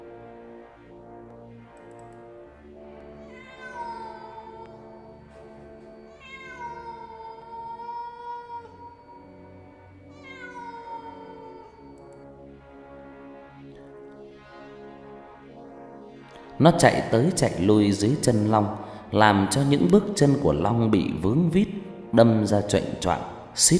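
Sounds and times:
steady droning background: 0.0s - 23.7s
soldier's cat yowling strangely in wartime: 3.2s - 4.8s, 6.1s - 9.2s, 10.1s - 12.0s
speech: 16.6s - 23.7s.

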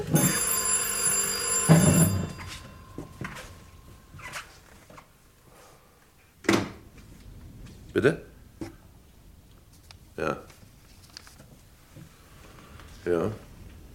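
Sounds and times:
telephone bell ringing: 0.0s - 4.6s
speech: 8.0s - 8.3s.

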